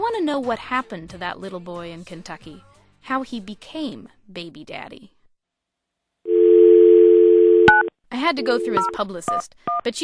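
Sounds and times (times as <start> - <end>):
speech: 0.1 - 5.2, 8.1 - 10.0
telephone call tone before a cell phone is answered: 6.3 - 9.0.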